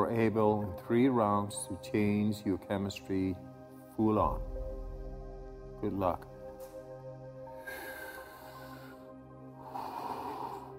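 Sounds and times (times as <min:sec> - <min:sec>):
speech: 0:00.1 - 0:04.5, 0:05.8 - 0:06.3
forceful breathing exercise breaths: 0:07.5 - 0:10.7.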